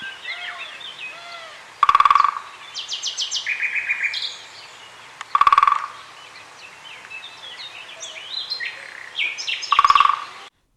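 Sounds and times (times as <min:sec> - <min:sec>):
male great spotted woodpecker drumming on wood: 0:00.0 - 0:04.1, 0:04.9 - 0:07.8, 0:09.6 - 0:10.7
birds singing and chirping: 0:00.0 - 0:10.5.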